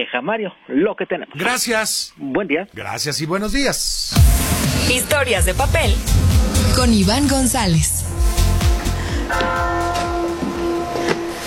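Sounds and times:
speech: 0:00.0 - 0:08.2, 0:09.3 - 0:09.6
church bells ringing: 0:09.3 - 0:11.2.

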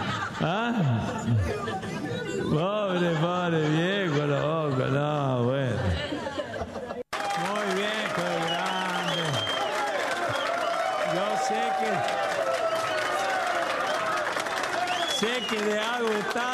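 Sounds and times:
laughter: 0:00.0 - 0:12.0
speech: 0:00.4 - 0:05.8
large audience applause: 0:07.1 - 0:16.5
scattered cheers: 0:07.1 - 0:16.5.

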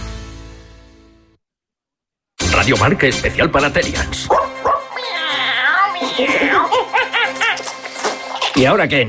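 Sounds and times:
speech: 0:02.7 - 0:04.5, 0:06.1 - 0:06.6, 0:08.6 - 0:09.0
person imitating a whining howl and dog barks: 0:05.0 - 0:06.8
laughter: 0:06.0 - 0:08.7.

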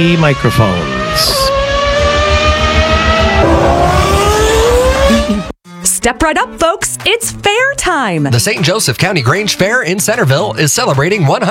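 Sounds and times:
speech: 0:00.0 - 0:01.4, 0:06.0 - 0:11.5
race car engines revving past: 0:00.0 - 0:05.6.

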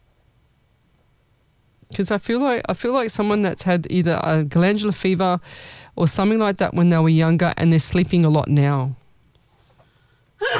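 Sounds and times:
quiet room noise: 0:00.0 - 0:10.5
speech: 0:01.9 - 0:09.0
person sneezing: 0:10.4 - 0:10.5.

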